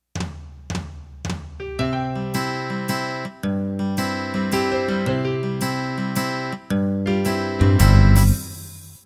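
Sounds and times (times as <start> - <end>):
country music intro in three-four time: 1.6 - 8.8.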